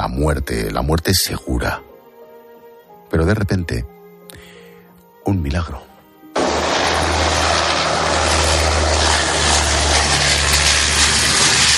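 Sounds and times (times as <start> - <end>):
speech: 0.1 - 1.9, 3.1 - 4.0, 5.2 - 5.9
air force propeller airplane circling over a boat at sea: 6.4 - 11.7.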